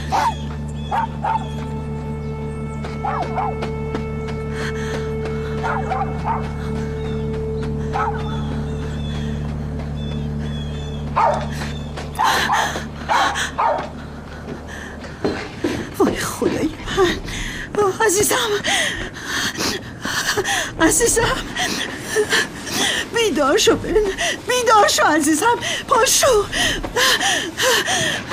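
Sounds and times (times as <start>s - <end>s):
dog whimpering: 0.0s - 1.6s
steady low hum: 0.0s - 24.6s
dog barking and yipping: 0.1s - 1.5s, 3.0s - 3.6s, 5.6s - 6.4s, 8.0s - 8.4s, 11.2s - 11.4s, 13.1s - 13.9s
speech: 18.1s - 19.1s, 20.8s - 22.5s, 23.4s - 28.3s.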